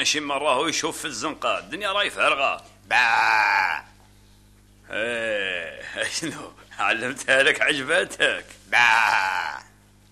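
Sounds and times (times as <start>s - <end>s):
speech: 0.0s - 3.9s, 4.9s - 9.6s
person imitating a sheep bleat: 2.9s - 4.0s, 8.7s - 9.8s.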